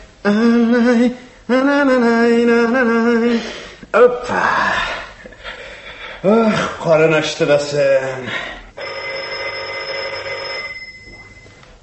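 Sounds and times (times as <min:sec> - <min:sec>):
speech: 0:00.3 - 0:04.9, 0:06.2 - 0:08.6
telephone ringing in a steady buzzing tone: 0:08.8 - 0:11.6.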